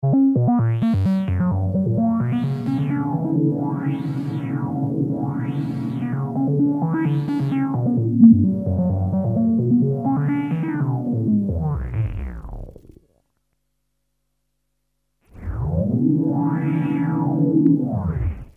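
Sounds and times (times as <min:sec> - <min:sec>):
VCO synthesizer effect: 0:00.3 - 0:12.9, 0:15.4 - 0:18.5.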